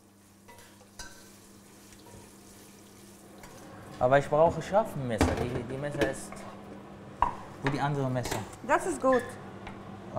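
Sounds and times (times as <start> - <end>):
food sizzling steadily in a pan: 0.0 - 4.3
speech: 4.0 - 6.6, 7.6 - 9.4.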